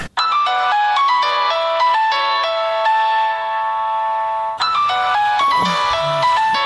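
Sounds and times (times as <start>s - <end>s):
mobile phone ringing with an electronic melody: 0.2s - 6.6s.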